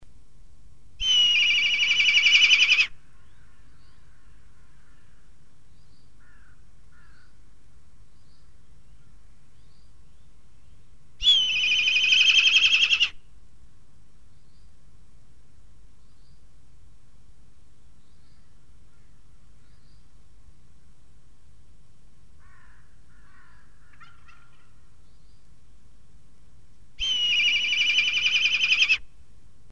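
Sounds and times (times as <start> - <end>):
kite bird calling: 1.0 - 2.9, 11.2 - 13.2, 27.0 - 29.0.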